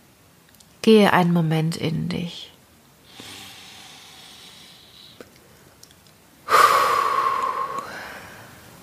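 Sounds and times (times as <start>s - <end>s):
speech: 0.8s - 2.5s
deep breathing: 3.0s - 5.6s, 6.4s - 8.8s.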